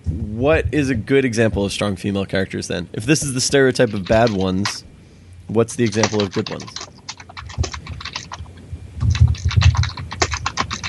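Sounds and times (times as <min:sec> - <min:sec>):
speech: 0:00.4 - 0:04.9, 0:05.5 - 0:06.9
typing on a computer keyboard: 0:03.8 - 0:04.8, 0:05.8 - 0:10.8.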